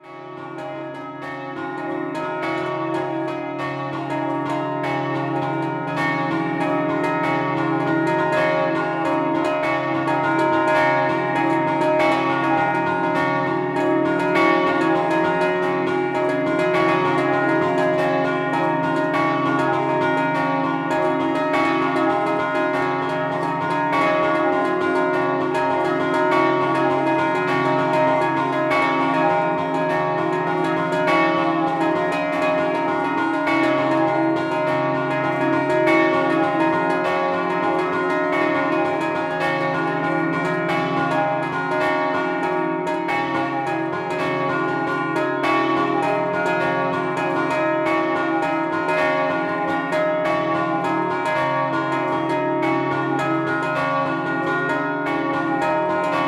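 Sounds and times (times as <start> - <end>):
bells: 0.0 - 56.2.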